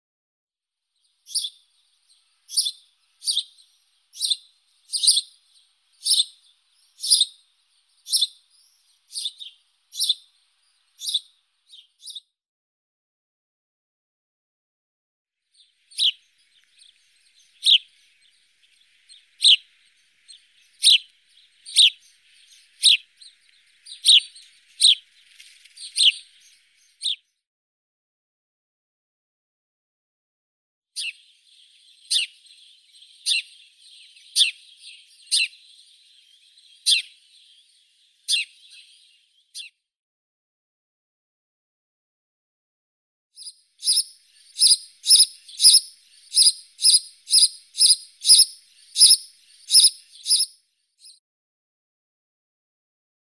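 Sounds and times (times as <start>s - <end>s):
house sparrow Passer domesticus chirping: 1.3s - 1.6s, 2.2s - 12.2s, 15.6s - 27.2s, 31.0s - 39.7s, 43.4s - 51.2s.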